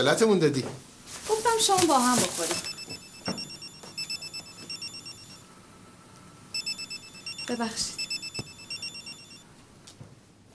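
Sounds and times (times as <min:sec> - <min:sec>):
speech: 0:00.0 - 0:00.9, 0:01.5 - 0:03.4, 0:07.5 - 0:08.0
telephone ringing with short high electronic trill pulses: 0:02.5 - 0:05.5, 0:06.5 - 0:09.5.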